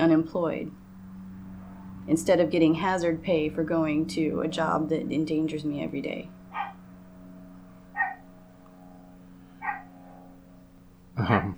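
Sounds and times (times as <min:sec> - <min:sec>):
speech: 0:00.0 - 0:00.8, 0:02.1 - 0:06.6, 0:11.2 - 0:11.5
steady low droning hum of a passing biplane: 0:00.0 - 0:11.5
small yappy dog barking outdoors at a passing biplane: 0:06.5 - 0:06.8, 0:08.0 - 0:08.2, 0:09.6 - 0:09.9.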